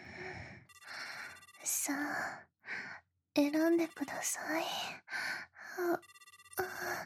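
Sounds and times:
electronic phone ringing with rapid pulsing tone: 0:00.6 - 0:01.8, 0:03.6 - 0:04.4, 0:05.9 - 0:06.9
speech: 0:01.7 - 0:02.5, 0:03.4 - 0:06.2.

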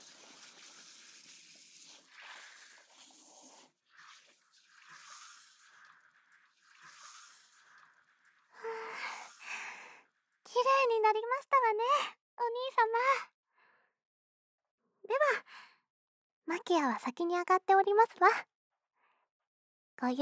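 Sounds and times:
shower spraying water rinsing: 0:00.0 - 0:09.9
speech: 0:11.1 - 0:13.4, 0:16.7 - 0:18.5, 0:20.0 - 0:20.1.

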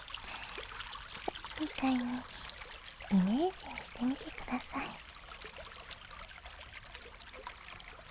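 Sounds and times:
river stream water flowing: 0:00.0 - 0:08.0
small water splashes: 0:00.0 - 0:08.0
speech: 0:01.6 - 0:02.4, 0:03.1 - 0:05.0.

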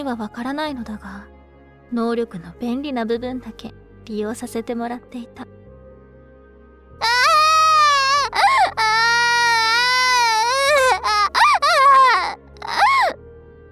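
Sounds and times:
speech: 0:00.0 - 0:05.6
baby crying: 0:07.0 - 0:13.2.

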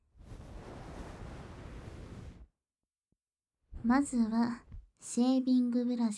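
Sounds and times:
hot towel laid over the face during a shave: 0:00.0 - 0:02.4
speech: 0:03.8 - 0:06.1.

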